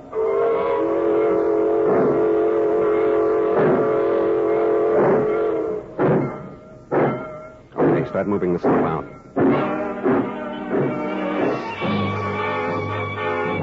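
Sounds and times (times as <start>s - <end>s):
freight train whistle blowing: 0.0s - 6.0s, 9.4s - 13.6s
freight train chuffing while pulling out: 0.0s - 13.6s
speech: 8.2s - 9.2s.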